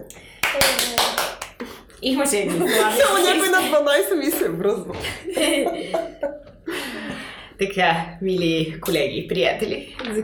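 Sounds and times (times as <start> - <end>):
hands clapping: 0.0 - 1.7
speech: 0.1 - 1.0, 2.0 - 6.4, 7.6 - 10.2
laughter: 2.5 - 4.0, 4.9 - 7.3.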